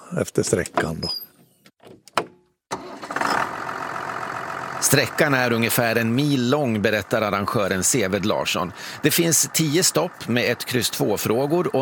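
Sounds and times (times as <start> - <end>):
speech: 0.1 - 1.3, 4.8 - 11.8
tractor engine cranking, starting and idling: 2.7 - 11.8.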